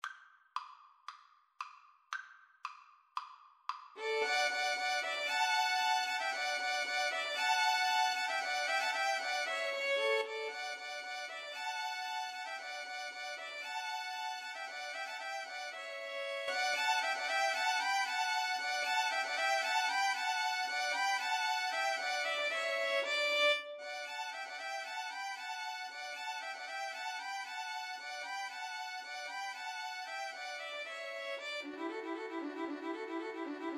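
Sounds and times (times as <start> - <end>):
violin trio playing: 4.0 - 33.7.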